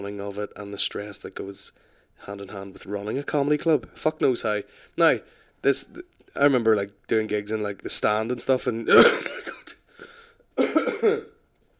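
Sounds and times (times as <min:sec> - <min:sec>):
speech: 0:00.0 - 0:09.6, 0:10.6 - 0:11.3
person coughing harshly: 0:08.9 - 0:09.9, 0:10.6 - 0:11.4.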